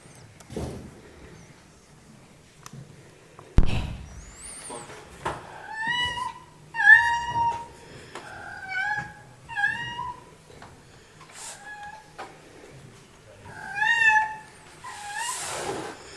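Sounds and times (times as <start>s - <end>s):
thumps: 3.6s - 4.4s
cat complaining with loud drawn-out meows: 5.5s - 10.3s, 13.4s - 15.4s.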